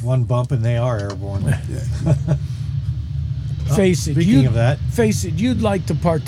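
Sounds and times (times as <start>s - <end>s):
speech: 0.0s - 2.6s, 3.7s - 6.2s
Daytona Coupe race car engine rumble pulling away at a race start: 0.0s - 6.2s
laughter: 1.4s - 2.6s.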